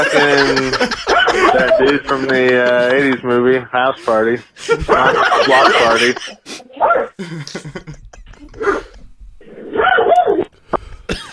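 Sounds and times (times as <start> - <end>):
laughter: 0.0 - 6.6, 7.2 - 9.0
speech: 0.0 - 8.9
dog barking and whimpering: 1.1 - 1.8, 6.8 - 7.2, 9.6 - 10.5.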